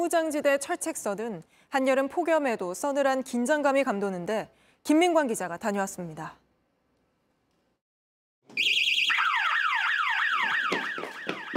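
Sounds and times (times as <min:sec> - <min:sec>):
speech: 0:00.0 - 0:06.4
border fence intrusion electronic alarm whooping: 0:08.6 - 0:11.5.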